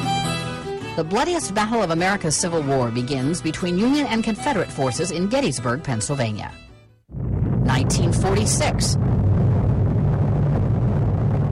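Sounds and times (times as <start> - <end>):
speech: 1.0 - 6.7, 7.7 - 9.2
20-kiloton atomic bomb test explosion rumble near Bikini Atoll in the Pacific: 7.1 - 11.5.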